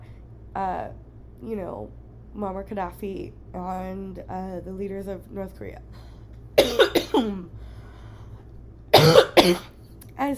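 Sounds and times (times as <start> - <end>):
speech: 0.6 - 6.1, 7.2 - 7.6, 9.4 - 10.3
person coughing harshly: 6.6 - 7.5, 8.9 - 9.8.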